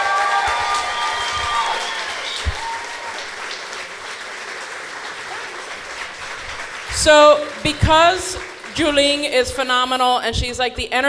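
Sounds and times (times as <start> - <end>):
whistles and cheers: 0.0 - 3.8
crowd applauding: 0.0 - 9.6
speech: 7.0 - 11.0.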